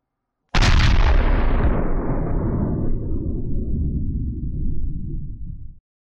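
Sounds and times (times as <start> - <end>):
heavy blast from a fuse-lit charge: 0.6 - 5.8.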